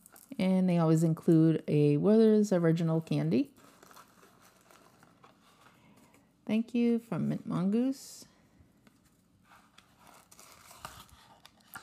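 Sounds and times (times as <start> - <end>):
speech: 0.4 - 3.6, 6.5 - 8.3
crinkly wrapping paper around a delivered package rustling and tearing: 3.4 - 5.7, 9.5 - 11.8.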